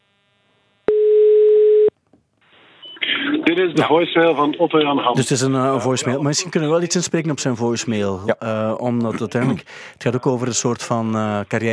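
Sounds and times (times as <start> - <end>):
telephone ringback tone while ringing someone: 0.9 - 1.9
speech: 3.5 - 11.7.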